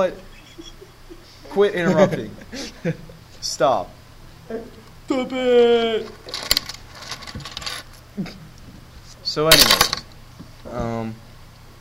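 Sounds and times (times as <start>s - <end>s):
speech: 0.0s - 0.7s, 1.5s - 6.4s, 8.2s - 8.4s, 9.3s - 10.0s, 10.7s - 11.2s
laughter: 0.2s - 3.3s
keys clattering onto a hard desk: 6.3s - 8.0s, 9.5s - 10.1s.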